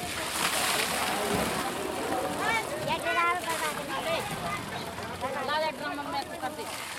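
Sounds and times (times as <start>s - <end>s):
crowd of voices chattering loudly: 0.0s - 6.9s
water gushing from hoses into plastic containers: 0.0s - 6.9s.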